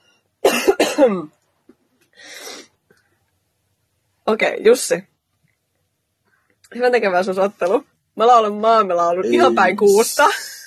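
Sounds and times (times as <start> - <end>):
person coughing: 0.4 - 1.3, 9.3 - 9.7
speech: 1.0 - 1.4, 4.3 - 5.1, 6.7 - 10.5.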